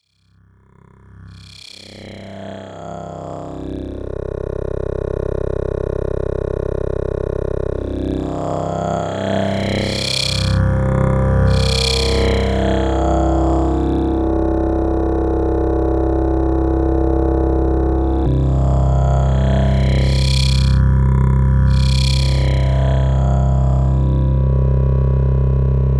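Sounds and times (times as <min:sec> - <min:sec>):
Sequential Pro 3 wavetable synth pad: 0:00.8 - 0:25.9.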